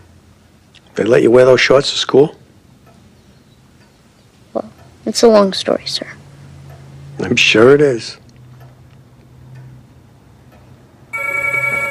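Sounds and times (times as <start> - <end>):
speech: 1.0 - 2.4, 4.6 - 6.2, 7.2 - 8.2
telephone ringing: 11.1 - 11.8.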